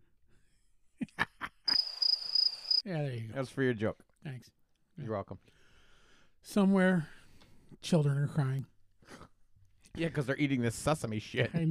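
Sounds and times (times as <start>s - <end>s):
cricket chirping sound effect: 1.7s - 2.8s
speech: 2.8s - 5.6s, 6.4s - 7.2s, 7.8s - 9.2s, 10.0s - 11.6s.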